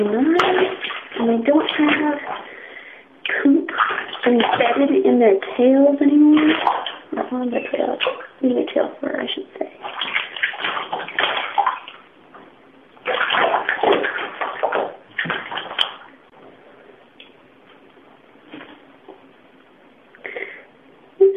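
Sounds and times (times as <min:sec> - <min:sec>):
water sloshing and splashing while bathing a pet rat in warm water: 0:00.0 - 0:16.4
speech: 0:01.4 - 0:02.4, 0:05.2 - 0:09.7.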